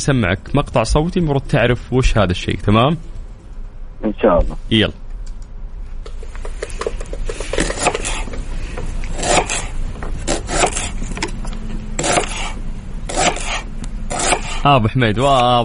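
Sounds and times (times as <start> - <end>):
speech: 0.0 - 3.1, 4.0 - 5.0, 14.6 - 15.6
knife chopping vegetables on a wooden cutting board: 6.5 - 8.3, 9.2 - 9.7, 10.3 - 11.0, 12.0 - 14.6.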